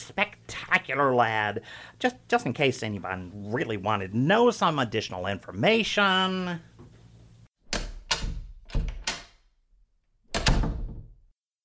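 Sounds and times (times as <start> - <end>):
speech: 0.9 - 6.8
door opening with clunks and thuds: 7.7 - 9.4, 10.3 - 11.2.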